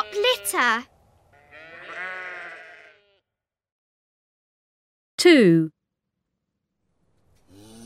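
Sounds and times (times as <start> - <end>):
sheep bleating: 0.0 - 3.3
speech: 0.4 - 0.9, 5.2 - 5.8.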